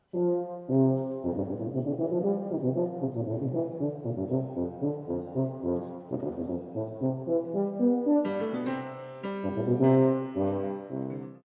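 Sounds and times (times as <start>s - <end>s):
tuba: 0.0s - 11.4s
piano: 3.6s - 11.4s.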